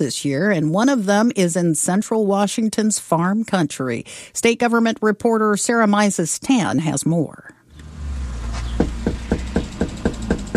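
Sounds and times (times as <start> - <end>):
speech: 0.0 - 7.6
firm knocking on a front door during door-to-door canvassing in Yakima Washington: 8.7 - 10.5.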